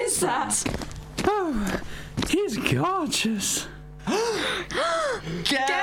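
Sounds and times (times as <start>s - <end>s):
speech: 0.2s - 3.7s, 4.4s - 5.8s
person gasping: 1.4s - 2.2s, 4.0s - 5.5s.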